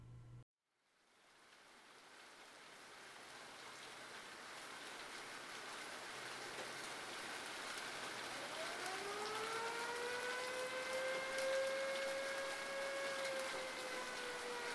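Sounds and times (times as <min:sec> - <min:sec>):
steady hiss: 0:01.0 - 0:08.5
air-raid siren howling: 0:07.8 - 0:14.7.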